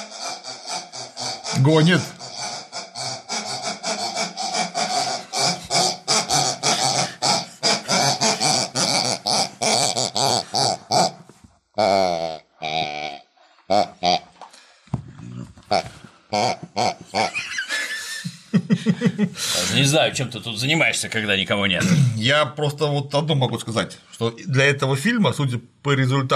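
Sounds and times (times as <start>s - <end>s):
pig squeals and snorts: 0.0s - 14.2s
herd of pigs grunting and oinking: 0.0s - 14.3s, 15.1s - 17.6s
speech: 1.5s - 2.2s, 19.8s - 26.3s
laughter: 16.9s - 20.1s.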